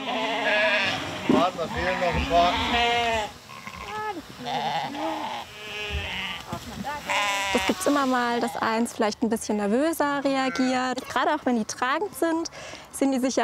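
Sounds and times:
flock of sheep bleating: 0.0s - 8.7s
speech: 1.3s - 3.3s, 4.4s - 5.3s, 6.9s - 13.4s.

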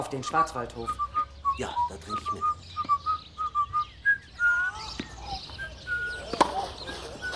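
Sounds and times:
speech: 0.1s - 2.6s
person whistling a short tune: 0.8s - 5.0s, 5.5s - 7.3s.

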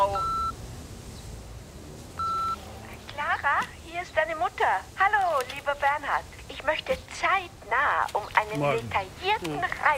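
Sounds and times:
faint low noise: 0.0s - 9.9s
answering machine beep before a message: 0.2s - 0.6s, 2.2s - 2.6s
speech: 3.6s - 9.9s.

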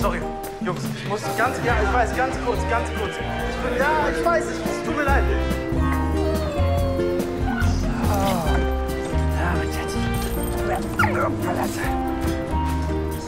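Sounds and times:
speech: 0.0s - 5.9s, 10.8s - 12.4s
dog barking, yipping and whimpering excitedly: 5.7s - 12.4s.

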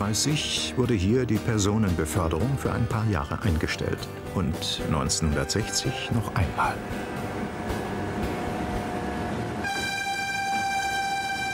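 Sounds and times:
speech: 0.1s - 7.2s
train pulling into station rumbling and rattling: 5.6s - 11.5s
train multi-tone horn or squealing brakes: 9.5s - 11.5s.

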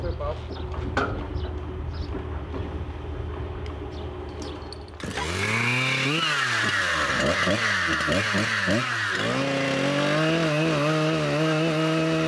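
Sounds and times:
mobile sawmill engine roaring: 0.2s - 12.2s
mobile sawmill blade sawing a round log: 5.0s - 12.2s.

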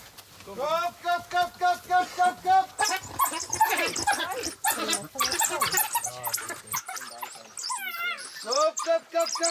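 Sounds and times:
people calling to lure dogs to meat: 0.4s - 9.4s
pack of excited dogs whining and yelping for meat: 2.7s - 9.4s.

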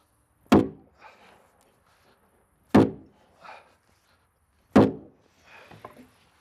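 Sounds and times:
heavy thuds knocking a log girder into place in a log house: 0.5s - 0.8s, 2.7s - 3.1s, 4.7s - 5.2s.

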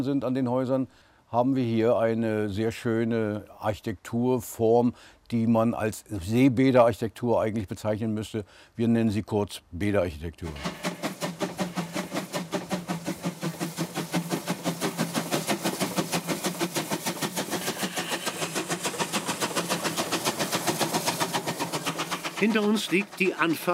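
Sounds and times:
speech: 0.0s - 10.8s, 22.4s - 23.7s
steam locomotive pulling train uphill chuffing: 10.5s - 23.7s.

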